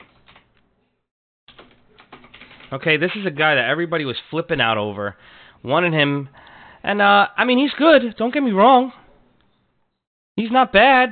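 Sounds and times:
rapid computer keyboard typing: 0.0s - 0.5s, 1.5s - 2.8s
speech: 2.7s - 9.0s, 10.4s - 11.1s.

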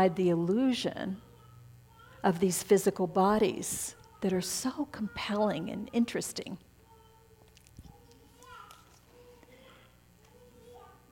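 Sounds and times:
speech: 0.0s - 1.2s, 2.2s - 6.7s
low hum: 0.0s - 11.1s
toddler babbling and chattering in a high sing-song voice: 1.2s - 2.3s, 6.8s - 11.0s.

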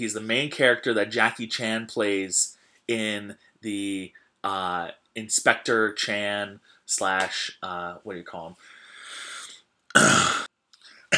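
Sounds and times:
speech: 0.0s - 8.8s, 10.0s - 10.4s
loud cough: 9.9s - 10.5s.

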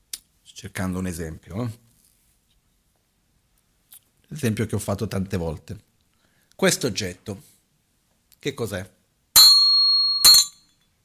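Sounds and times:
speech: 0.6s - 1.9s, 4.3s - 5.9s, 6.6s - 7.5s, 8.4s - 9.0s
slightly out-of-tune bell struck: 9.4s - 10.7s.

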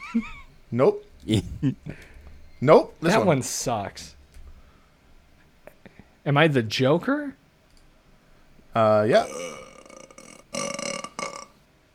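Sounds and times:
speech: 0.1s - 4.2s, 6.2s - 7.4s, 8.8s - 9.7s
short croaky burp: 9.1s - 11.6s.

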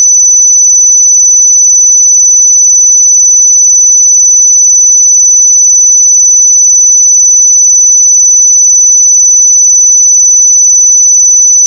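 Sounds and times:
pure sine tone at 5994 Hz: 0.0s - 11.6s.

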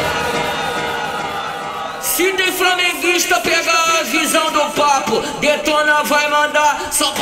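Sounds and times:
large party crowd shouting together: 0.0s - 5.6s
speech: 2.2s - 7.2s.

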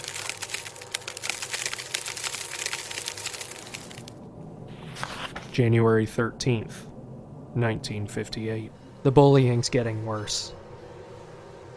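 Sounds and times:
glass cracking and splintering: 0.0s - 4.2s
speech: 5.6s - 6.9s, 7.6s - 10.6s.

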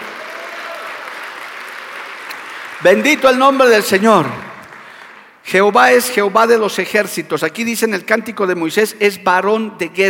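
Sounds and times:
audience applauding: 0.0s - 5.4s
speech: 2.8s - 4.5s, 5.5s - 10.0s.

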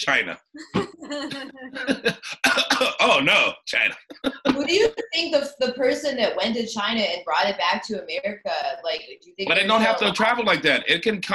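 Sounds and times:
laughter: 0.0s - 5.8s, 9.5s - 11.3s
speech: 0.0s - 11.3s
person doing a theatrical imitation of a cough: 1.3s - 4.9s, 9.5s - 11.0s.

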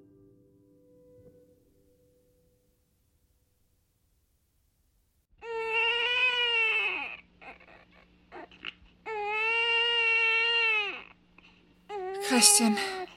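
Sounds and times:
baby boy crying: 5.4s - 11.2s, 11.9s - 13.1s
speech: 12.4s - 13.0s.

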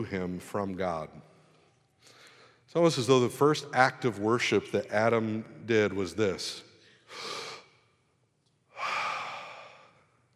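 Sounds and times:
speech: 0.0s - 1.3s, 2.0s - 7.4s
person taking deep breaths: 2.0s - 2.7s, 6.8s - 7.7s, 8.7s - 10.3s.

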